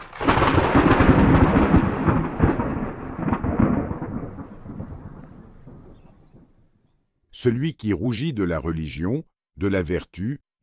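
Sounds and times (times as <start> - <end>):
imitated thunder rumble: 0.0 - 6.8
speech: 7.4 - 10.6.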